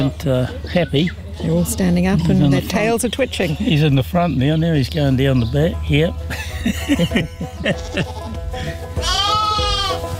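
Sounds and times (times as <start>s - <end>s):
speech: 0.0s - 8.8s
laughter: 6.3s - 9.0s
sheep bleating loudly on a hill country sheep and beef farm in Taranaki: 7.7s - 8.4s, 9.0s - 10.1s.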